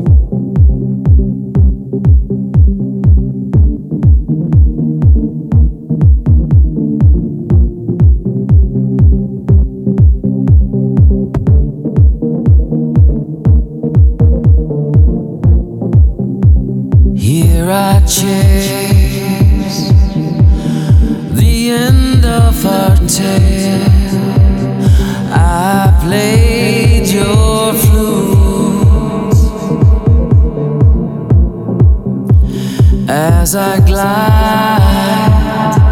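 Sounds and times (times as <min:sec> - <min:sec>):
thumping kick beat of an electronic music track: 0:00.0 - 0:35.9
speech: 0:18.1 - 0:18.8, 0:23.1 - 0:24.0
sustained layered synth tones: 0:18.1 - 0:35.9.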